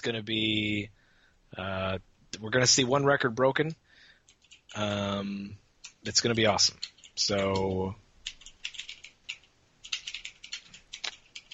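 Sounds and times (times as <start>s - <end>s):
speech: 0.0s - 3.8s, 4.7s - 8.0s
faint typing on a computer keyboard: 4.2s - 4.8s, 5.8s - 11.5s.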